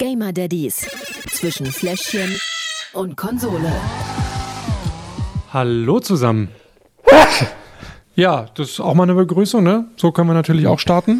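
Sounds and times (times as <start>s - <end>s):
speech: 0.0s - 4.2s, 5.5s - 7.6s, 8.2s - 11.1s
loud sneeze: 7.0s - 7.7s.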